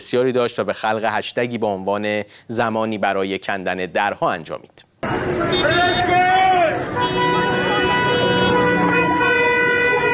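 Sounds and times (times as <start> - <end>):
speech: 0.0 - 6.2
many car horns honking in protest: 5.0 - 10.1.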